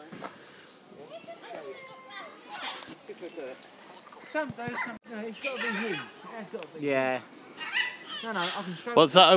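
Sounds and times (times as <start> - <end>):
cockatoos squawking: 1.1 - 6.6, 7.2 - 9.3
speech: 3.2 - 7.4, 8.2 - 9.3.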